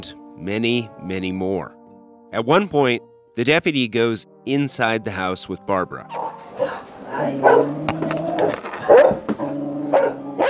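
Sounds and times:
speech: 0:00.0 - 0:09.2
several dogs barking and yipping: 0:06.1 - 0:10.4
higher whimpering yelps of dogs: 0:06.2 - 0:10.4.

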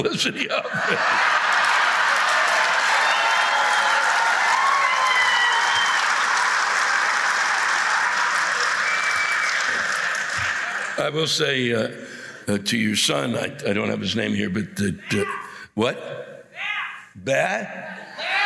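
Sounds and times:
speech: 0:00.0 - 0:01.4, 0:11.0 - 0:16.3, 0:17.2 - 0:18.0
laughter: 0:00.0 - 0:02.5
large crowd applauding: 0:00.8 - 0:11.4
whistles: 0:05.3 - 0:06.3, 0:08.8 - 0:10.5.

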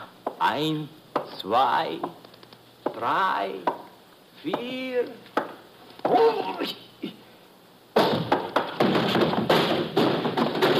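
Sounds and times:
speech: 0:00.4 - 0:02.2, 0:03.0 - 0:03.8, 0:04.4 - 0:05.3, 0:06.0 - 0:06.9
barrel clattering thuds and bumps slamming into someone: 0:08.0 - 0:10.7
heavy barrel rolling across a hard warehouse floor: 0:08.2 - 0:10.7.

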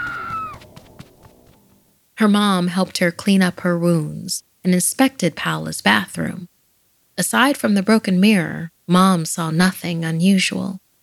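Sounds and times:
woman screaming in terror: 0:00.0 - 0:00.6
speech: 0:02.2 - 0:06.5, 0:07.2 - 0:10.8.

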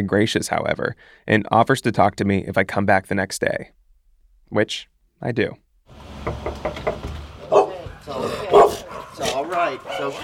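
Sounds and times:
speech: 0:00.0 - 0:03.8, 0:04.5 - 0:06.8, 0:09.5 - 0:10.2
small dog barking in high-pitched yaps: 0:07.4 - 0:10.2.

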